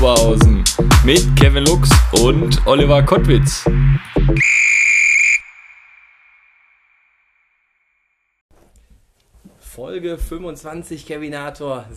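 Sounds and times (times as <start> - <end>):
speech: 1.1 - 4.8, 9.8 - 11.9
loud shrill referee's whistle blast: 4.4 - 6.9.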